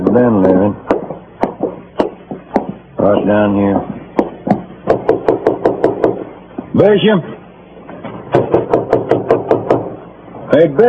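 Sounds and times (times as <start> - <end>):
speech: 0.2 - 0.9, 3.0 - 4.0, 6.8 - 7.4, 10.6 - 10.8
firm knocks on a locked wooden door: 0.8 - 2.8, 3.7 - 6.2, 8.3 - 10.0.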